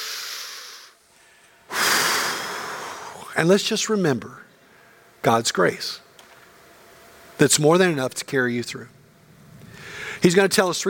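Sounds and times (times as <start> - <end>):
group of people taking a big deep breath together: 0.0 - 3.2, 9.7 - 10.2
speech: 3.4 - 4.5, 5.2 - 6.0, 7.4 - 9.0, 10.2 - 10.8.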